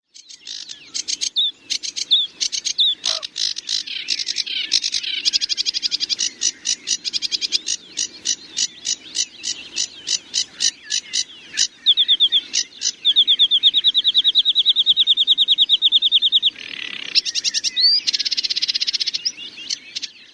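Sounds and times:
mixed birds: 0:00.1 - 0:20.3
parrot: 0:02.9 - 0:03.5.

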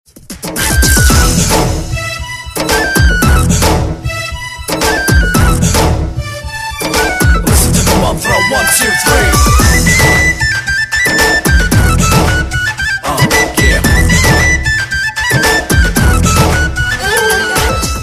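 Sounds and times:
country flute: 0:00.6 - 0:18.0.

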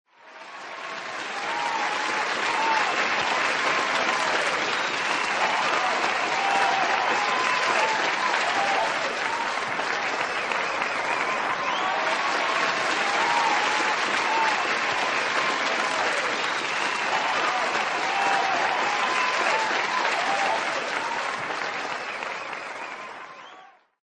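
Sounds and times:
applause: 0:00.1 - 0:24.0
crowd cheering: 0:00.1 - 0:24.0.

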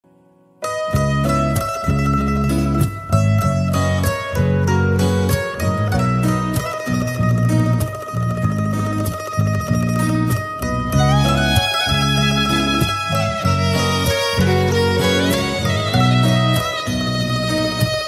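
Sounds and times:
sad romantic guitar: 0:00.1 - 0:18.0.

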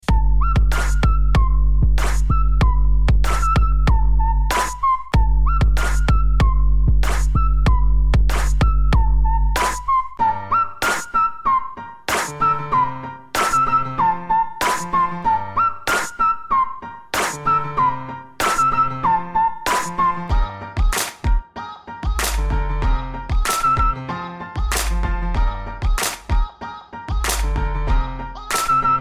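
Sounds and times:
trap whistle: 0:00.0 - 0:20.4, 0:23.5 - 0:24.0, 0:28.5 - 0:29.0
trap piano: 0:00.0 - 0:29.0.

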